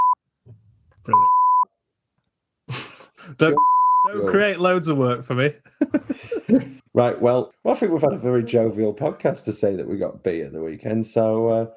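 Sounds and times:
speech: 1.0 - 1.3, 3.4 - 11.7
short bleep blip: 1.1 - 1.6
electronic censor bleep tone near 1 kHz: 1.1 - 1.7, 3.6 - 4.2
laughter: 2.7 - 3.5, 5.7 - 6.9.

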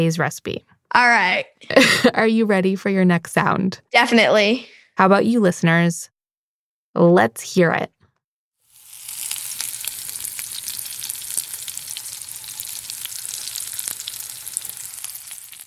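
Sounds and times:
speech: 0.0 - 6.1, 6.9 - 8.0
food sizzling and frying in a pan: 8.6 - 15.6.

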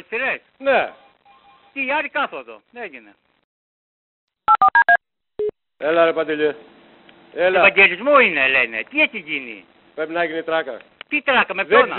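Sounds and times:
speech: 0.1 - 1.0, 1.8 - 3.3, 5.8 - 6.7, 7.3 - 11.9
telephone keypad dialing two-tone beeps: 4.5 - 5.5.

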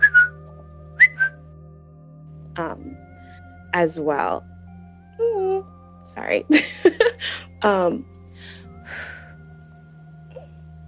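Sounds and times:
person whistling short high notes as a vocal tic: 0.0 - 0.4, 1.0 - 1.4
speech: 3.7 - 4.5, 6.1 - 9.1.

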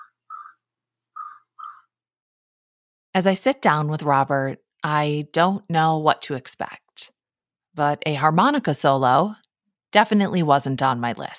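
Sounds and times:
crow cawing outside an open window across from farmland: 0.0 - 0.6, 1.2 - 1.9
speech: 3.2 - 7.2, 7.8 - 11.3.

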